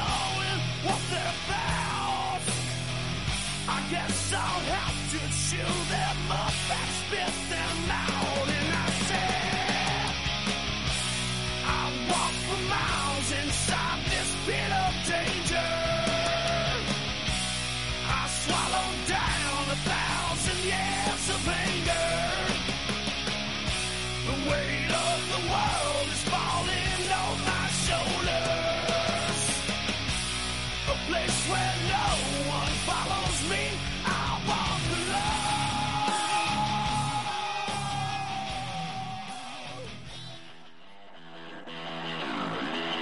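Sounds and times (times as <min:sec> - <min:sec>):
raw shouted male vocal: 0:00.0 - 0:02.5, 0:03.7 - 0:10.2, 0:11.6 - 0:16.9, 0:18.1 - 0:22.6, 0:24.3 - 0:29.6, 0:30.9 - 0:40.0
hard rock track with distorted guitars and driving drums: 0:00.0 - 0:42.9
speech: 0:03.9 - 0:07.4.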